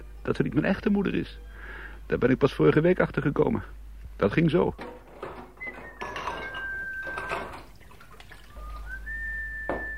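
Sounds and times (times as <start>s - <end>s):
speech: 0.2s - 5.0s
plates and cutlery clattering and clinking in a sink: 4.8s - 8.5s
person whistling a steady tune: 5.6s - 7.4s, 8.5s - 9.9s.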